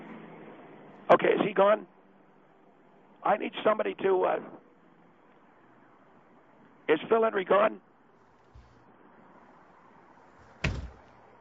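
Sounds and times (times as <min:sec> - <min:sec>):
speech: 0:01.1 - 0:02.0, 0:03.2 - 0:04.6, 0:06.9 - 0:07.9
heavy door slamming shut: 0:08.5 - 0:08.8, 0:10.4 - 0:11.2.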